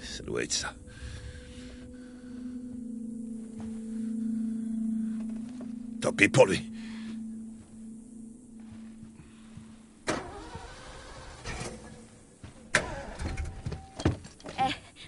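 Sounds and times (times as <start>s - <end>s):
low hum: 0.0s - 14.4s
speech: 0.2s - 0.8s, 6.2s - 6.7s
car engine starting with rough uneven rumble and rattling: 6.7s - 14.0s.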